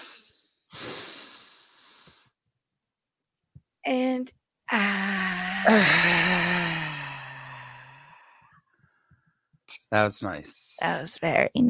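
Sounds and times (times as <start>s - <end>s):
deep breath in and out: 0.0s - 2.4s, 5.0s - 9.4s
speech: 3.9s - 4.9s, 5.6s - 6.5s, 9.9s - 11.6s.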